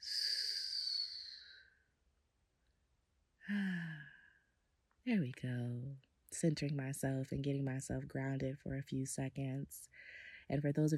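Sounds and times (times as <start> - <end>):
deep breath in and out: 3.4 - 4.3
speech: 3.5 - 3.7, 5.1 - 10.9.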